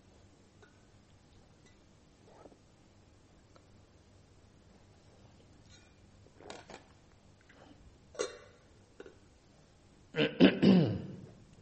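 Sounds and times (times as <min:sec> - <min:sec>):
faint soft noises: 0:00.0 - 0:08.0
person clearing throat loudly: 0:08.2 - 0:08.6, 0:10.2 - 0:11.4.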